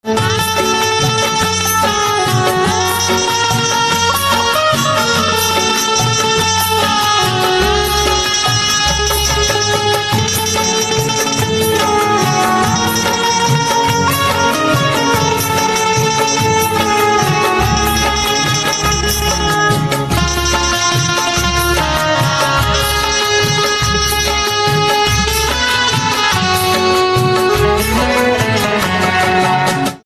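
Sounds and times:
banjo instrumental ringtone: 0:00.0 - 0:30.0.

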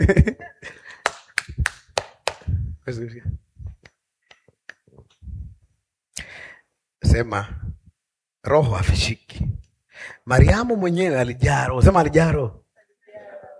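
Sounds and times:
laughter: 0:00.0 - 0:01.0
speech: 0:00.1 - 0:00.3, 0:02.9 - 0:03.4, 0:07.1 - 0:07.6, 0:08.4 - 0:12.6
group clapping hands: 0:00.9 - 0:02.5.

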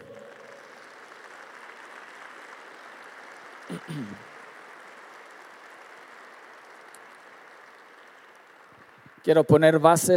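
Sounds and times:
audience applauding: 0:00.0 - 0:10.1
speech: 0:03.7 - 0:04.3, 0:09.2 - 0:10.1.

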